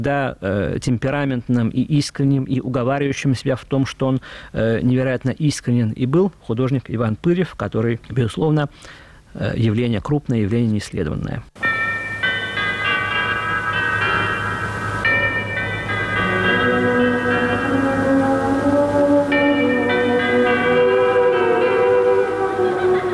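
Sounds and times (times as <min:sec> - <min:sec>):
speech: 0:00.0 - 0:11.7
clock tower chimes ringing: 0:11.6 - 0:18.2, 0:19.3 - 0:23.1.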